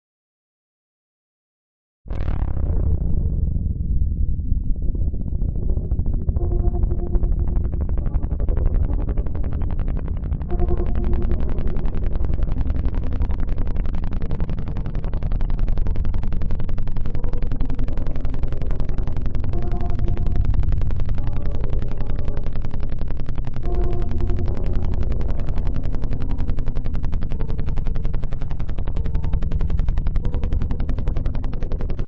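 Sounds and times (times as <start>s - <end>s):
deep sub bass tone for tense or creepy film scenes: 2.1s - 32.0s.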